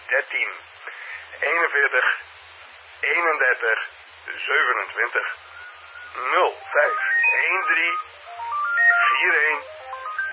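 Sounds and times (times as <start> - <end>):
radio-like chatter: 0.1 - 2.3, 3.0 - 8.2, 9.0 - 9.8
speech: 0.2 - 2.4, 3.0 - 5.4, 6.1 - 9.7
telephone ringing with a stepped melodic electronic ringtone: 5.6 - 10.3.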